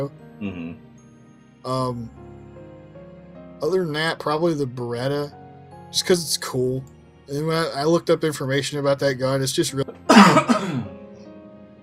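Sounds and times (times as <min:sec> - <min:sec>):
speech: 0:00.0 - 0:00.9, 0:01.6 - 0:02.2, 0:03.6 - 0:09.9
cough: 0:09.9 - 0:10.9.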